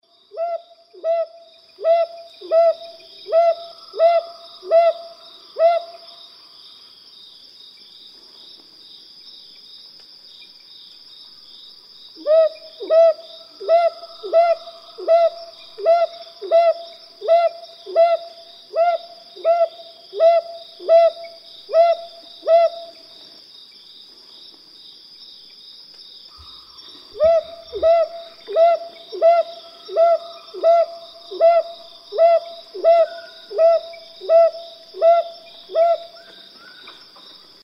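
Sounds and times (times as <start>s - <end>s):
brown hawk-owl calling: 0.4s - 6.0s, 12.2s - 23.0s, 26.3s - 37.0s.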